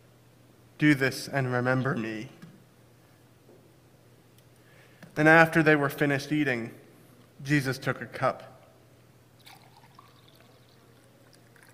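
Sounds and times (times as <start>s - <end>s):
low steady hum: 0.0s - 11.7s
speech: 0.8s - 2.4s, 5.2s - 6.8s, 7.4s - 8.5s
drips: 9.4s - 11.7s
liquid poured into a cup: 9.4s - 11.7s.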